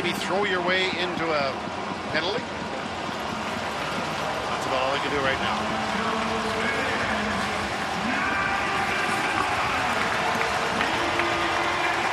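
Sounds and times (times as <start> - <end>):
large stadium crowd cheering at a football game: 0.0 - 12.1
speech: 0.1 - 2.8, 4.2 - 6.9
stadium crowd clapping at a football game: 2.9 - 12.1.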